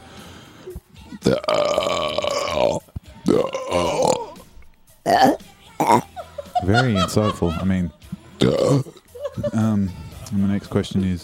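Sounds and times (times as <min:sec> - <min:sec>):
speech: 0:01.2 - 0:01.6, 0:06.7 - 0:11.2
loud drawn-out burps: 0:01.2 - 0:04.4, 0:05.0 - 0:06.1, 0:08.4 - 0:09.0
laughter: 0:05.8 - 0:08.0, 0:08.9 - 0:09.8.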